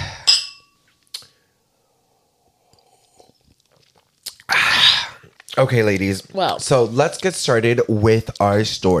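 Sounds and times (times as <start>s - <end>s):
glasses clinking in a toast: 0.2s - 0.9s
speech: 5.6s - 8.9s.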